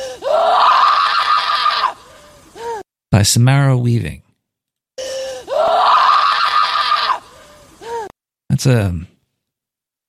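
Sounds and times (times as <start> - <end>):
woman giving a horror-movie scream: 0.0 - 2.8, 5.4 - 8.1
speech: 3.2 - 4.3, 8.6 - 9.1.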